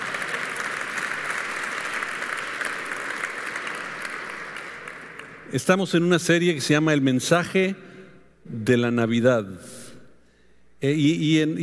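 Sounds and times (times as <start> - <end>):
audience applause: 0.0 - 5.5
speech: 5.5 - 9.8, 10.8 - 11.6.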